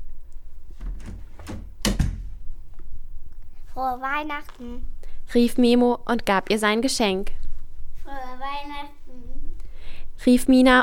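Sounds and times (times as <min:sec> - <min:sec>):
door opened with scrapes, rattles and a latch thunk: 0:00.8 - 0:02.4
speech: 0:03.8 - 0:07.4, 0:10.2 - 0:10.8.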